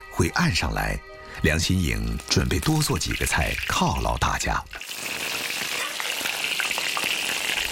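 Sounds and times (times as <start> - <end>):
speech: 0.2 - 5.1
freshly sun-dried fish pan-frying in hot oil: 2.2 - 7.7.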